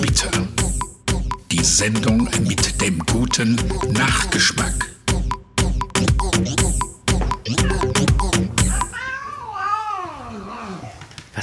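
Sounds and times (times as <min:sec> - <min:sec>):
rhythmic music: 0:00.0 - 0:09.0
speech: 0:00.2 - 0:00.5, 0:01.6 - 0:04.9, 0:06.4 - 0:06.8
cat meowing with claw stuck in sofa: 0:07.5 - 0:08.0, 0:08.6 - 0:11.0.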